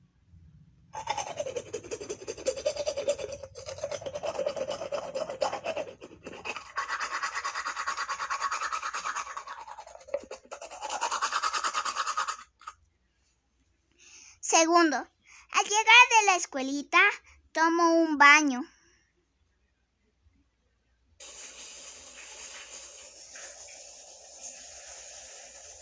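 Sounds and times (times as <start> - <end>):
toothbrush brushing teeth after a meal: 1.0 - 12.8, 21.2 - 25.8
speech: 14.6 - 15.1, 16.3 - 18.7.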